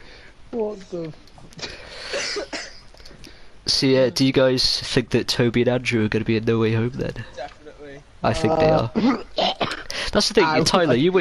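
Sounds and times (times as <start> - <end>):
speech: 0.5 - 2.7, 3.7 - 7.6, 8.2 - 9.5, 10.1 - 11.1
person coughing in a harsh raspy fit: 1.6 - 2.9, 8.9 - 10.0.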